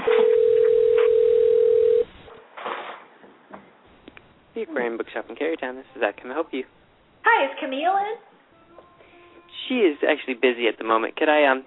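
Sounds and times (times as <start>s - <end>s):
electronic ringback tone on an outgoing phone call: 0.0s - 2.2s
speech: 4.8s - 8.3s, 9.7s - 11.6s.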